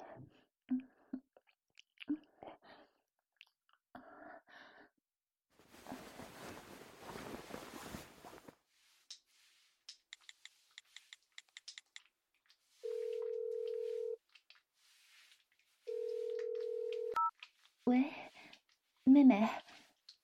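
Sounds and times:
rustling: 0:05.6 - 0:19.0
phone keypad beeps: 0:15.9 - 0:17.3
speech: 0:19.2 - 0:19.7.

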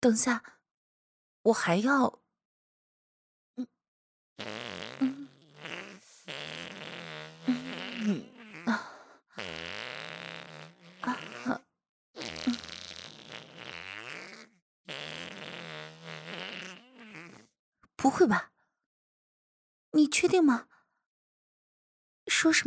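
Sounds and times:
speech: 0:00.0 - 0:00.6, 0:01.4 - 0:02.2, 0:04.4 - 0:04.8, 0:18.0 - 0:18.5, 0:19.9 - 0:20.7, 0:22.3 - 0:22.6
loud buzzy farts: 0:04.4 - 0:11.6, 0:12.2 - 0:17.5.

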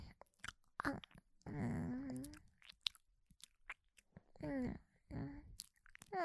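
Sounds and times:
person chewing and eating food such as cream cake: 0:00.2 - 0:04.2, 0:05.5 - 0:06.1.

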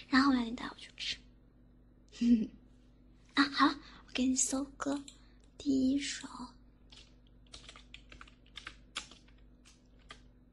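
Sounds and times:
speech: 0:00.0 - 0:01.2, 0:02.2 - 0:02.6, 0:03.4 - 0:06.6
typing on a newly replaced computer keyboard: 0:06.9 - 0:10.3.

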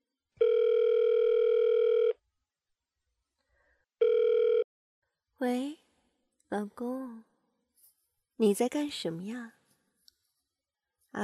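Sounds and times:
phone ringback tone while placing a call: 0:00.4 - 0:02.2, 0:04.0 - 0:04.7
speech: 0:05.4 - 0:05.8, 0:06.5 - 0:07.3, 0:08.4 - 0:09.6.

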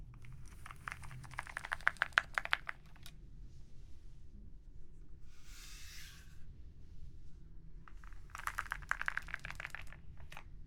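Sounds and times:
typing on a heavy mechanical computer keyboard: 0:00.2 - 0:03.1, 0:08.3 - 0:10.4.

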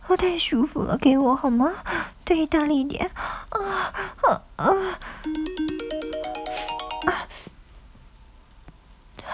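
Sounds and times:
speech: 0:00.1 - 0:05.0
phone ringtone for an incoming call: 0:05.3 - 0:07.5.

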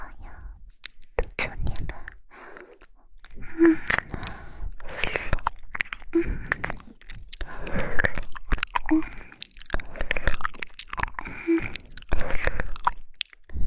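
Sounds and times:
wet mouth sounds of chewing and eating cream: 0:00.6 - 0:13.5
light breathy gasps: 0:02.3 - 0:05.5, 0:06.1 - 0:12.9.

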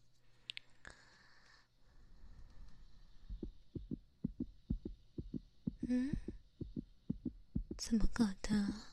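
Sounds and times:
rapid steady heartbeat thumping: 0:03.2 - 0:08.9
speech: 0:05.9 - 0:06.3, 0:07.9 - 0:08.9.

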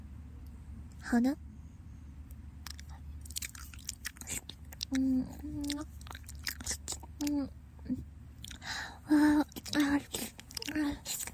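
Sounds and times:
speech: 0:01.0 - 0:01.4, 0:04.9 - 0:06.0, 0:07.2 - 0:08.1
wet ASMR ear-licking mouth sounds: 0:02.6 - 0:08.7, 0:09.3 - 0:11.3.

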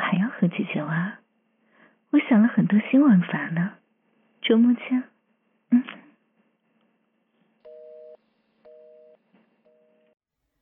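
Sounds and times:
speech: 0:00.4 - 0:01.2, 0:02.1 - 0:03.8, 0:04.4 - 0:05.1, 0:05.7 - 0:06.0
telephone hang-up tone of electronic beeps: 0:07.7 - 0:10.2.

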